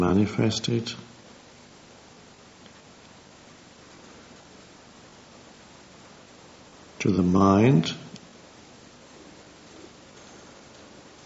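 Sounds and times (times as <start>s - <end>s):
speech: 0.0s - 1.1s, 7.0s - 8.0s
rain falling: 0.0s - 11.2s.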